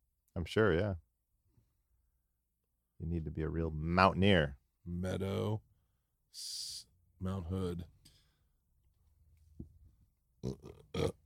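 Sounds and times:
speech: 0.4 - 1.0, 3.0 - 5.7, 6.3 - 8.0, 10.4 - 11.2
faint grunt-like sound: 10.4 - 11.2
low guttural burp: 10.4 - 11.2.

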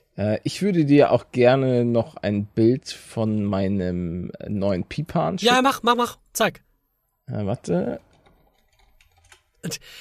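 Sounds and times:
speech: 0.2 - 6.7, 7.3 - 8.1, 9.6 - 10.0
typing on a computer keyboard: 7.9 - 9.6.

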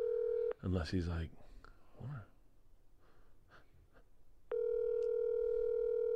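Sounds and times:
telephone line tone during an outgoing call: 0.0 - 0.6, 4.5 - 6.1
speech: 0.6 - 2.3.

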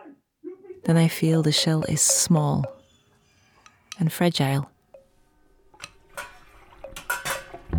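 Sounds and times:
speech: 0.8 - 2.8, 4.0 - 4.7
clinks and clatter of the kettle being handled: 1.4 - 2.9, 5.8 - 7.7.

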